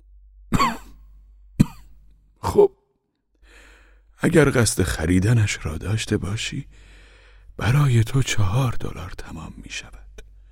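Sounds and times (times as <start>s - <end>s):
old man coughing: 0.5s - 1.0s, 1.6s - 2.7s
speech: 2.5s - 2.8s, 4.2s - 6.9s, 7.6s - 10.0s.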